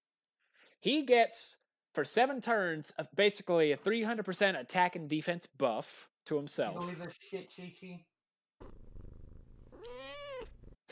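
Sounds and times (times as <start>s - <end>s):
speech: 0.8s - 8.8s
male pet cat purring: 8.6s - 10.9s
male pet cat meowing: 9.7s - 10.7s.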